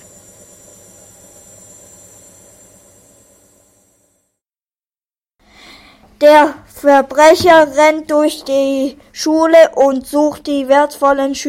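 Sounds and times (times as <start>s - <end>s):
washing machine spinning hard: 0.0s - 4.3s
speech: 6.2s - 11.4s.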